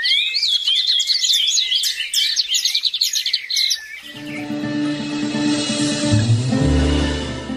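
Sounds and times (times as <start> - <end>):
small birds singing and chirping: 0.0 - 4.9
low instrumental-sounding tone: 4.2 - 7.5.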